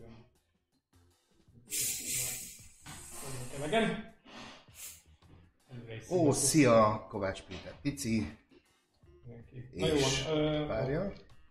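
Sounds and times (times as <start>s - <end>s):
gas hiss from a container being opened: 1.7s - 3.7s, 4.7s - 5.1s
speech: 3.6s - 4.1s, 6.0s - 8.4s, 9.3s - 11.3s.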